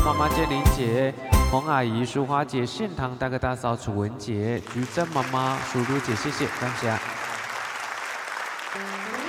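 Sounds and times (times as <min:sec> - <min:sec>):
speech: 0:00.1 - 0:07.2
audience applause: 0:04.6 - 0:09.2.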